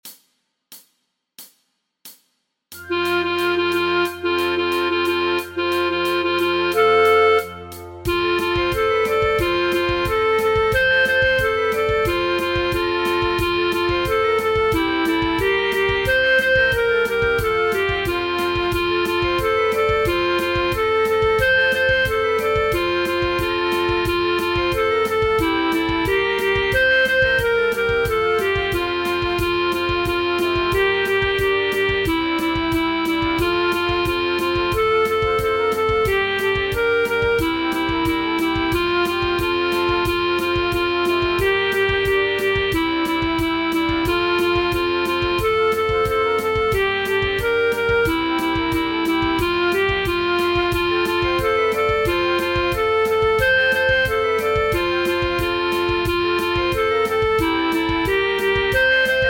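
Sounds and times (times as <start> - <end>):
flute playing for practice tracks: 2.8 - 59.2.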